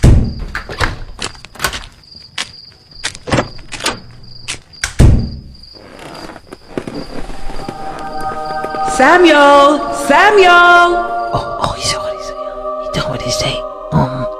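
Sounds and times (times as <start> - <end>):
door being closed and locked: 0.0 - 2.0, 3.1 - 5.5
crickets chirping: 0.0 - 14.3
speech: 9.0 - 12.0.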